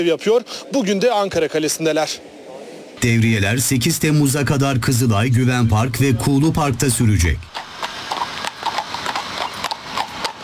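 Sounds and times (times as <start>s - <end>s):
speech: 0.0s - 2.4s, 3.0s - 7.6s
steady hiss: 0.0s - 10.4s
specially trained police patrol horses from Hungary clip-clopping at Ankara Castle: 7.4s - 10.4s.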